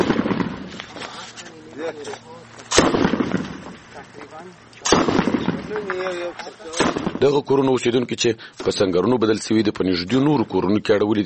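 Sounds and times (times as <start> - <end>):
hunting rifle shots fired at a roadside security post: 0.0 - 0.8, 2.7 - 4.1, 4.7 - 7.4
speech: 1.8 - 3.0, 4.0 - 11.2.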